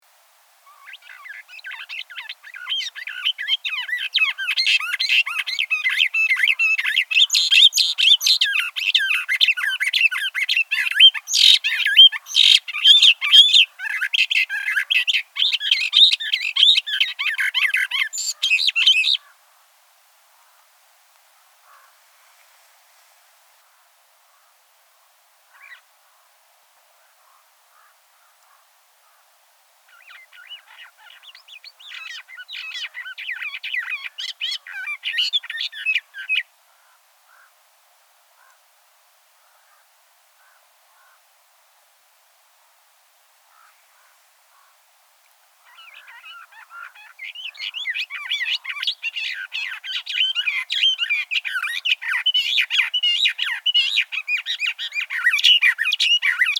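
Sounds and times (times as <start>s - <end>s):
cactus wren singing: 0.7s - 19.3s, 29.9s - 37.5s, 45.7s - 56.5s.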